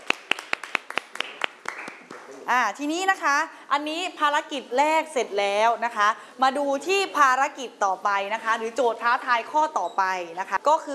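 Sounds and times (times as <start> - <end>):
classroom of students clapping: 0.0 - 2.3
speech: 2.5 - 10.9.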